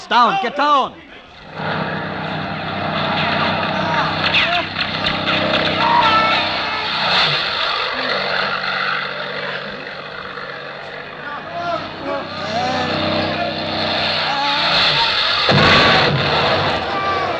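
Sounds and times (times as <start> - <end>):
speech: 0.1 - 1.8
low-flying propeller aircraft roaring overhead: 1.4 - 17.3
people shouting: 3.0 - 9.8, 11.1 - 17.3.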